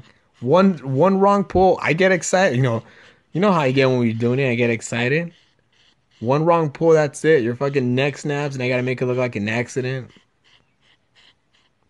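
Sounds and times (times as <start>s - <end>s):
hot female dog panting: 0.0s - 11.8s
speech: 0.4s - 5.4s, 6.2s - 10.2s.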